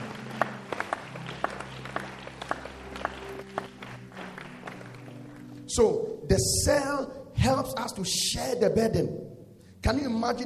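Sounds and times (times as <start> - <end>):
scattered hand claps from a small group of audience members: 0.0 - 6.2
speech: 5.8 - 10.4.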